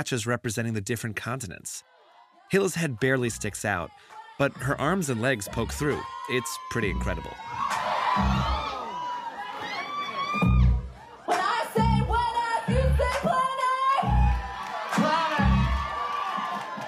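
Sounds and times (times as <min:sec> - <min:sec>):
speech: 0:00.0 - 0:08.6
crowd screaming and cheering at a live performance: 0:04.5 - 0:16.8.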